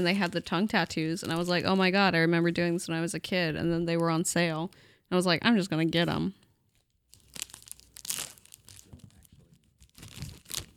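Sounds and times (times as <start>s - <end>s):
speech: 0.0s - 6.4s
thin paper backing peeling off a sticky fruit roll-up: 7.1s - 10.7s.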